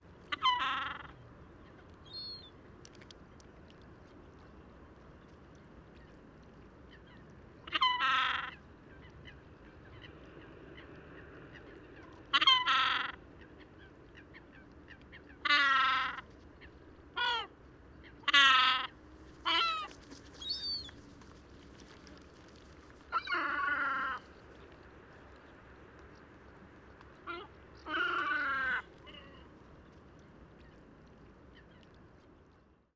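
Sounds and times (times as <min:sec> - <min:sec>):
juvenile yellow-legged gull calling: 0:00.3 - 0:01.2, 0:07.7 - 0:08.6, 0:12.3 - 0:13.2, 0:15.2 - 0:16.2, 0:18.1 - 0:21.0, 0:23.1 - 0:24.2, 0:27.3 - 0:29.5.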